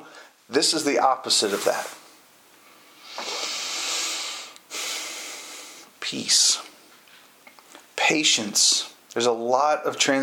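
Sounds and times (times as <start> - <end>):
speech: 0.5 - 2.0, 6.1 - 6.7, 8.1 - 10.2
voice imitating a pot of spaghetti water boiling over with a hiss: 3.0 - 5.9.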